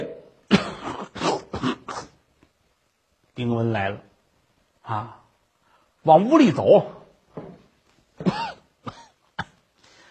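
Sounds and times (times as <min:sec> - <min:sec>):
person imitating a coughing fit: 0:00.5 - 0:02.2, 0:08.2 - 0:09.6
speech: 0:03.4 - 0:04.1, 0:04.8 - 0:05.2, 0:06.0 - 0:07.0.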